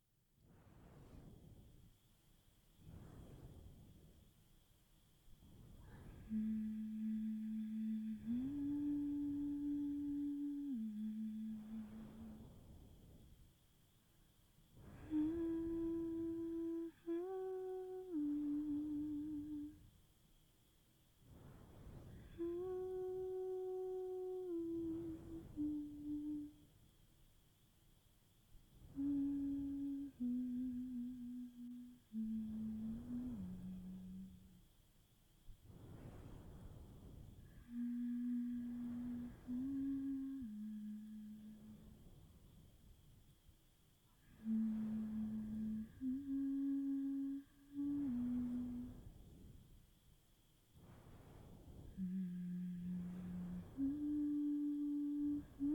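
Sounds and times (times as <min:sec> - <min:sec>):
crickets: 0:00.5 - 0:55.7
person humming: 0:05.8 - 0:12.6, 0:14.8 - 0:19.8, 0:22.0 - 0:26.7, 0:28.9 - 0:34.7, 0:37.4 - 0:41.9, 0:44.2 - 0:49.0, 0:51.9 - 0:55.7.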